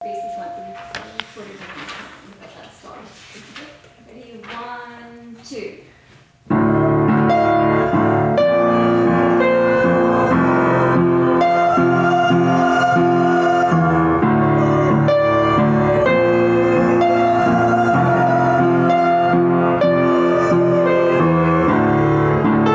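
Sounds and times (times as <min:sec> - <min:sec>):
bass accompaniment at choir practice: 0:06.5 - 0:22.7
sopranos singing from G at choir practice: 0:06.7 - 0:22.7.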